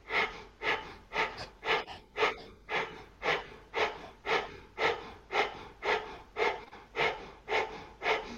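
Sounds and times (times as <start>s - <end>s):
rapid rhythmic yoga breath of fire nasal exhalations: 0.0s - 8.3s.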